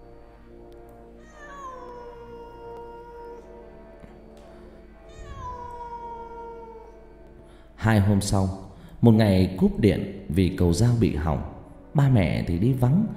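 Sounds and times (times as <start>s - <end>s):
cat meowing and yowling at night: 1.2s - 4.3s, 5.0s - 7.1s
speech: 7.8s - 13.1s.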